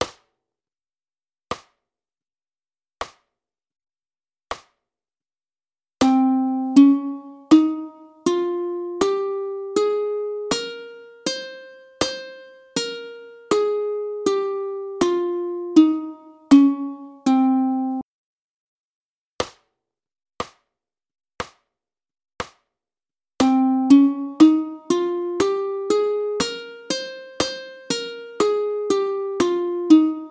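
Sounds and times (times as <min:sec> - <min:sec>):
ukulele playing a Phrygian scale: 0:06.0 - 0:18.0, 0:23.4 - 0:30.3.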